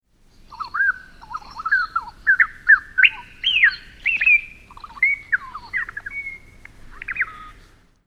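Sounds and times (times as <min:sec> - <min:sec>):
bird chirping and warbling: 0:00.3 - 0:07.8.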